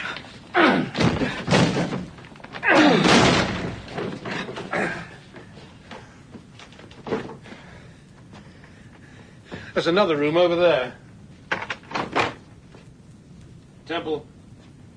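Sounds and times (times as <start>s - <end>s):
door being forced open: 0.7s - 5.0s, 11.5s - 12.4s
speech: 9.8s - 11.0s, 13.9s - 14.3s.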